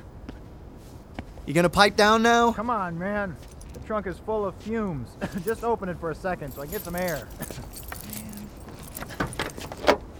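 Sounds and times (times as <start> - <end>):
speech: 1.5 - 7.8
keys jangling: 3.4 - 3.8, 5.3 - 5.6, 6.4 - 10.0.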